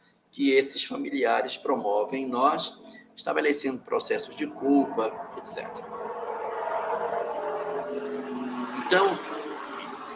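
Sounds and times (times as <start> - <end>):
speech: 0.4 - 6.2, 8.0 - 9.4
helicopter droning overhead: 1.4 - 10.1
sharp burst of noise: 4.0 - 10.1.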